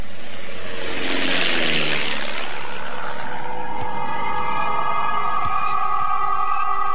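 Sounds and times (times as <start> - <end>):
squadron of warplanes flying overhead beneath a snowy overcast sky: 0.0 - 6.9.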